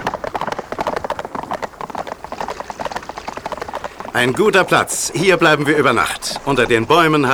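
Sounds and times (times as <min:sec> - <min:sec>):
several horses galloping toward a spring: 0:00.0 - 0:07.3
speech: 0:04.2 - 0:07.3.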